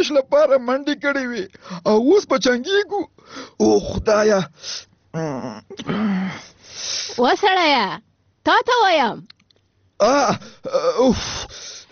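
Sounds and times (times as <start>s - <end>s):
speech: 0.0s - 9.4s, 10.0s - 11.8s
person crying and moaning in their sleep: 5.1s - 6.5s, 10.0s - 11.7s.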